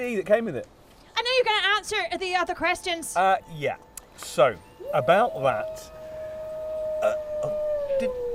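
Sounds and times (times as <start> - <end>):
speech: 0.0 - 0.8, 1.4 - 6.0
pack of wolves howling: 4.8 - 8.3.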